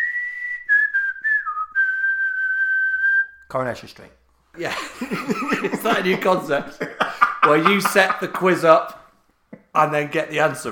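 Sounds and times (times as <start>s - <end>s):
person whistling a TV theme tune: 0.0s - 3.4s
speech: 3.5s - 9.0s, 9.8s - 10.6s
laughter: 4.6s - 9.0s.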